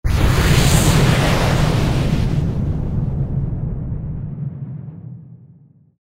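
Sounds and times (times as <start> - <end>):
large wind magic sound effect: 0.0 - 4.0.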